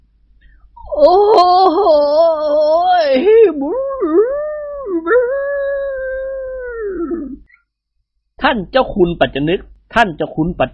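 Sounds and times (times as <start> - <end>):
man's voice imitating a dog's howl: 0.8 - 7.4
speech: 1.0 - 4.2, 8.4 - 10.7.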